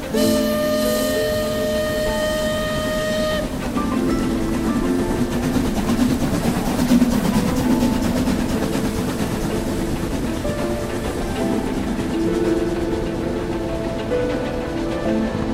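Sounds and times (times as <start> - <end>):
passenger train horn blaring: 0.0 - 4.6
passenger train rumbling and clattering along the tracks: 0.0 - 15.5.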